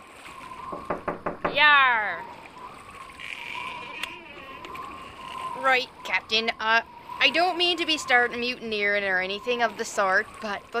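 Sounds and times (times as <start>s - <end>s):
low steady creaking hum: 0.4s - 10.2s
knocks on the wooden door of the captain's cabin on a ship: 0.7s - 1.6s
speech: 5.6s - 10.7s.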